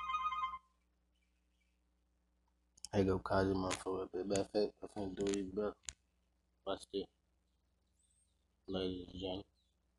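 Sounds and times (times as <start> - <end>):
telephone ringing with an electronic burst: 0.0 - 0.7
speech: 2.9 - 5.9, 6.6 - 7.2, 8.7 - 9.5.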